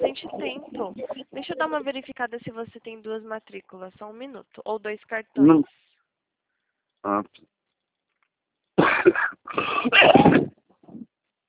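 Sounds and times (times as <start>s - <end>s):
speech: 0.8s - 5.8s, 7.0s - 7.5s, 9.0s - 11.1s
person coughing in harsh raspy bursts: 8.8s - 11.0s.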